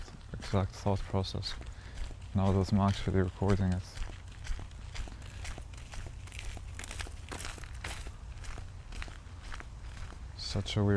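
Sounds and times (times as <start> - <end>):
footsteps of a person walking: 0.0 - 10.9
speech: 0.5 - 4.0, 10.5 - 10.9.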